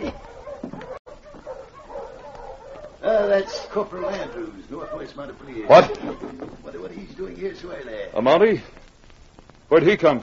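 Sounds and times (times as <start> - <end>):
dog barking and whimpering: 0.0 - 6.0
speech: 3.3 - 8.8, 9.7 - 10.2
laughter: 4.2 - 7.4.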